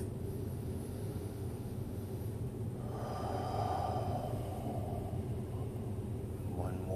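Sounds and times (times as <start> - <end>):
steady low outdoor rumble: 0.0 - 6.9
deep breath drawn in through the nose: 0.4 - 5.8.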